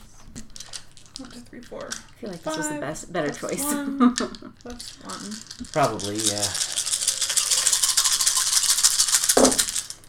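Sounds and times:
dice rattling: 0.4s - 2.6s, 4.7s - 10.0s
speech: 1.2s - 6.8s
dice landing with a soft thud: 9.2s - 10.0s.

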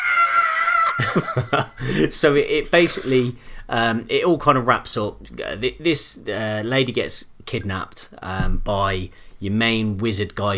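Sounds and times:
person doing a vocal impression of a tentacled sea monster screaming: 0.0s - 1.4s
laughter: 0.7s - 2.2s
speech: 1.0s - 10.5s.

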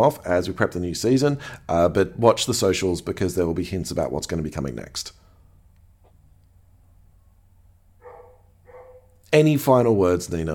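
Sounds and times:
speech: 0.0s - 5.2s, 9.3s - 10.5s
steady low hum: 1.5s - 9.3s
neighbor's dog barking: 8.0s - 9.2s.

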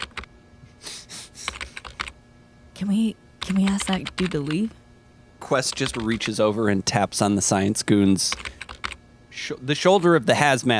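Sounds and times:
idle typing on a computer keyboard at a terminal: 0.0s - 0.3s, 1.4s - 2.2s, 3.4s - 4.7s, 5.7s - 6.4s, 8.2s - 9.0s
speech: 2.8s - 4.8s, 5.5s - 8.6s, 9.4s - 10.7s.

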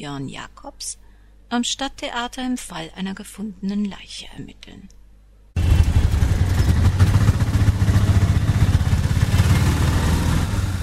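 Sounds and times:
speech: 0.0s - 5.0s
loud street traffic noise through thin window panes of a university lab in Florianópolis: 5.6s - 10.8s.

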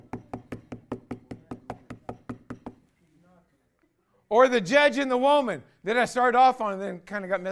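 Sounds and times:
rapid steady firm knocking on a door: 0.0s - 2.8s
speech: 4.3s - 7.5s.

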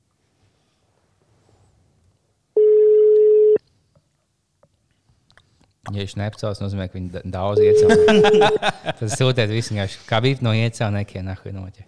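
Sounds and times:
phone ringback tone while calling someone: 2.6s - 3.6s, 7.6s - 8.6s
speech: 5.9s - 11.8s
laughter: 7.7s - 10.0s.

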